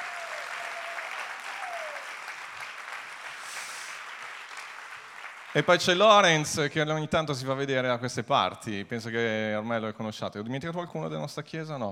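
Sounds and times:
church congregation applauding: 0.0s - 6.2s
speech: 5.6s - 11.9s.

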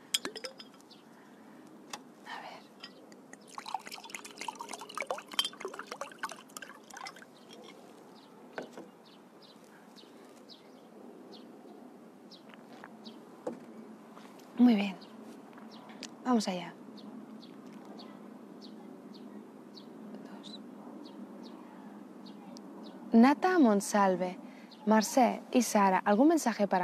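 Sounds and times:
glass clinking: 0.0s - 0.8s, 2.8s - 8.0s
water splashing and dripping: 3.3s - 7.9s
speech: 16.3s - 16.8s, 23.5s - 26.8s.

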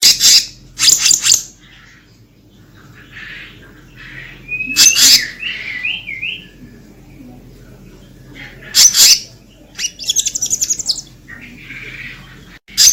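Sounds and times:
bird singing energetically with harsh bursts, rolling trills and whistles: 0.0s - 2.0s, 3.4s - 6.6s, 8.7s - 12.9s.

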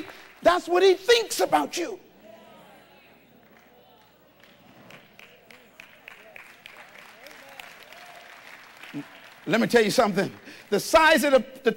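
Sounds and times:
audience clapping hands at a church sermon: 0.0s - 1.0s, 3.4s - 11.2s
speech: 0.0s - 2.0s, 9.0s - 11.7s
low murmur: 2.0s - 9.5s.

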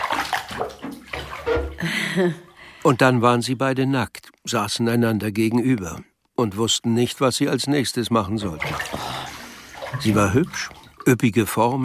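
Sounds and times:
water running into a bathtub as a bath is drawn: 0.0s - 2.6s, 8.3s - 11.3s
speech: 1.5s - 9.2s, 9.9s - 11.8s.

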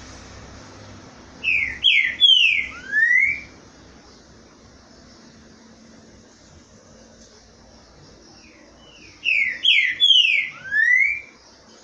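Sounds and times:
Green-winged Saltator whistled song: 1.4s - 3.6s, 8.3s - 11.5s.

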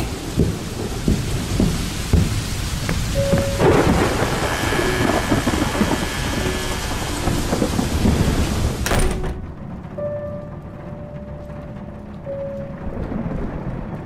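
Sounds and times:
rumbling thunder: 0.0s - 10.2s, 10.9s - 14.0s
heavy rain blowing in gusts through a window during a thunderstorm: 0.0s - 14.0s.

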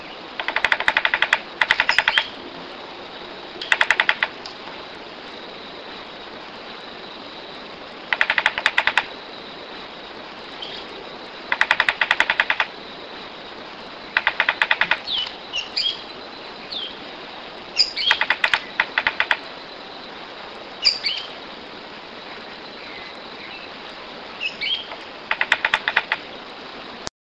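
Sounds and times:
Ochre-collared piculet Picumnus temminckii calling: 0.0s - 2.4s, 3.6s - 4.5s, 8.1s - 9.1s, 10.6s - 12.8s, 14.0s - 17.1s, 17.7s - 20.0s, 20.8s - 21.4s, 22.2s - 26.4s
background hiss: 0.0s - 27.1s.

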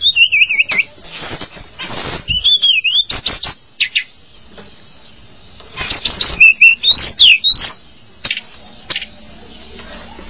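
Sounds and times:
Java sparrow whistling: 0.0s - 0.9s, 2.3s - 4.1s, 5.9s - 7.8s
Java sparrow clicks: 2.6s - 4.1s, 5.9s - 9.2s.

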